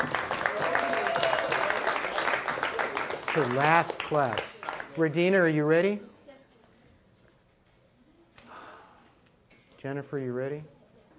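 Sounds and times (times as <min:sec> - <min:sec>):
roomful of people clapping: 0:00.0 - 0:05.4
speech: 0:03.4 - 0:06.1, 0:09.8 - 0:10.8.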